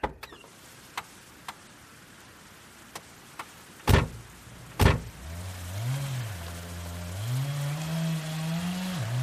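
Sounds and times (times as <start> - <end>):
sharp knocks: 3.9 - 4.2, 4.8 - 5.1
chainsaw motor revving while cutting down a tree: 5.2 - 9.2.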